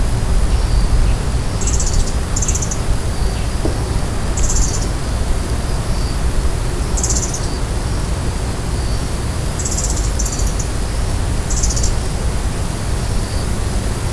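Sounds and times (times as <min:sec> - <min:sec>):
loud broad hissing background noise: 0:00.0 - 0:14.1
Asian brown flycatcher thin high calls: 0:00.5 - 0:05.0, 0:07.0 - 0:07.6, 0:09.6 - 0:10.8, 0:11.5 - 0:12.0.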